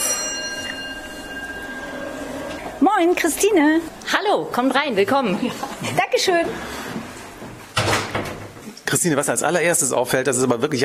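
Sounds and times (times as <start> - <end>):
doorbell ringing at the front door of a house: 0.0 - 4.9
speech: 2.9 - 6.8, 9.0 - 10.8.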